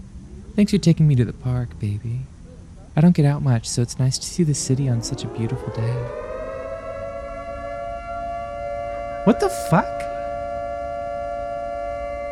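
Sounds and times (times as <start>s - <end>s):
speech: 0.6s - 2.3s, 3.0s - 6.3s, 9.3s - 10.0s
wailing sirens: 4.0s - 12.3s.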